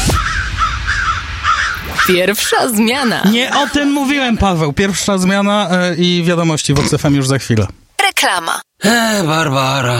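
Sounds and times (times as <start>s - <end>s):
thinner chattering bird call: 0.1s - 4.1s
crow cawing: 0.2s - 4.0s
speech: 2.1s - 9.9s.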